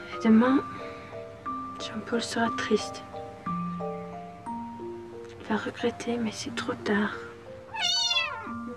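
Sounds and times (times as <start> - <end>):
speech: 0.2 - 0.9, 1.9 - 3.1, 5.5 - 7.9
kitten meowing: 7.7 - 8.6.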